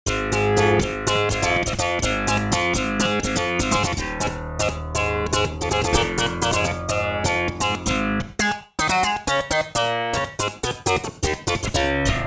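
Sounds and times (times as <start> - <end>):
synth guitar factory patch: 0.1 - 12.2.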